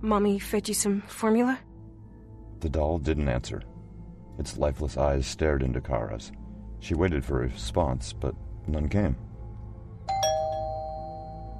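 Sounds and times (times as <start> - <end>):
speech: 0.0 - 1.7, 2.6 - 3.7, 4.4 - 9.3
doorbell chiming with two-tone ding-dong: 10.1 - 11.5.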